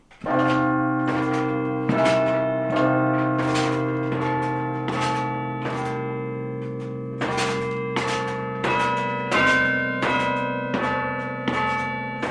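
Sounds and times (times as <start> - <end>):
church carillon of bells played with batons from the bell tower: 0.2 - 12.2.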